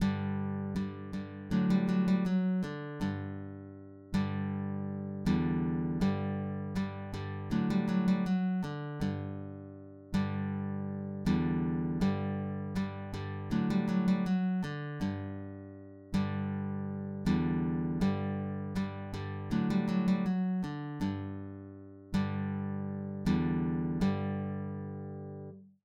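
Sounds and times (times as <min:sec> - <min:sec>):
guitar playing: 0:00.0 - 0:25.5.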